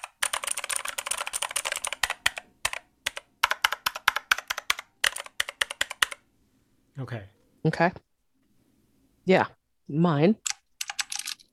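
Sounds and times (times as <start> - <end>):
rapid typing on a mechanical keyboard: 0.0 - 6.2, 10.4 - 11.5
speech: 7.0 - 8.1, 9.3 - 10.5.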